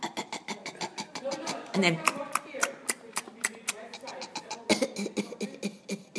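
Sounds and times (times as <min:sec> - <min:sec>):
person imitating coughing: 0:00.0 - 0:02.3, 0:03.8 - 0:06.1
imitated throat clearing: 0:00.0 - 0:02.4, 0:03.5 - 0:06.1
speech: 0:01.3 - 0:02.2.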